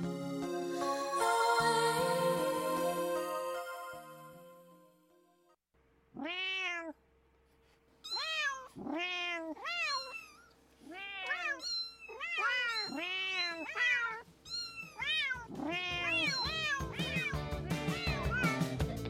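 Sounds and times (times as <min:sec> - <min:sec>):
music: 0:00.0 - 0:05.4, 0:15.9 - 0:19.0
cat meowing loudly: 0:06.2 - 0:07.0, 0:08.0 - 0:18.7.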